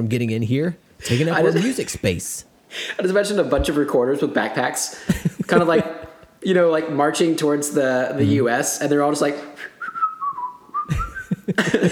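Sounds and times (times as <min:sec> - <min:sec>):
speech: 0:00.0 - 0:09.7, 0:10.9 - 0:11.9
laughter: 0:01.0 - 0:02.0, 0:05.1 - 0:06.3, 0:10.9 - 0:11.9
person whistling a short simple tune: 0:09.6 - 0:11.5.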